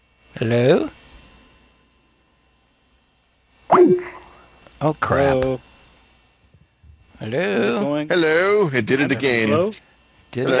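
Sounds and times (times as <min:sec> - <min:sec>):
speech: 0:00.4 - 0:01.0, 0:04.8 - 0:05.7, 0:07.2 - 0:10.5
water drop notification sound: 0:03.7 - 0:04.3.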